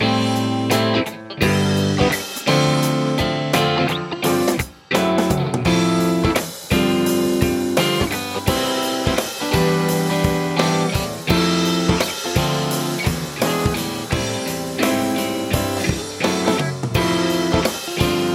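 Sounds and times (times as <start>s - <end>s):
guitar: 0.0s - 18.3s.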